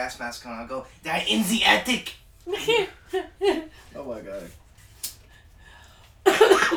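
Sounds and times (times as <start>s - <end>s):
speech: 0.0s - 4.6s
harsh raspy cough after smoking a pipe: 6.3s - 6.7s.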